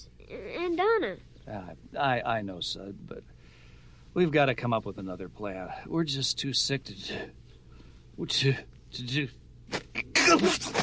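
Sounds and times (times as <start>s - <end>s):
speech: 0.3s - 3.4s, 4.2s - 7.4s, 8.2s - 10.8s
loud sharp sneeze: 9.7s - 10.8s.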